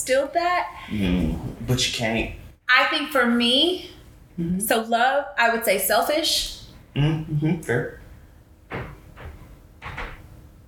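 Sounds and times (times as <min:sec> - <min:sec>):
speech: 0:00.1 - 0:08.0
heavy footsteps of upstairs neighbors thumping through ceiling: 0:08.7 - 0:10.6.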